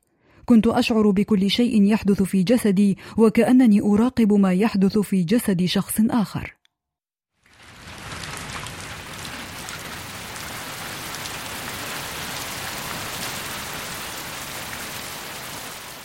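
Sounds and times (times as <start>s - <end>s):
speech: 0.5s - 6.6s
heavy rain pattering on hard surfaces: 7.4s - 16.0s.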